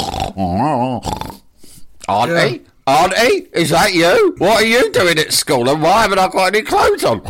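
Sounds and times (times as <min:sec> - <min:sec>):
person imitating a pig whimpering while dreaming: 0:00.0 - 0:01.5
speech: 0:00.2 - 0:01.4, 0:02.1 - 0:07.2.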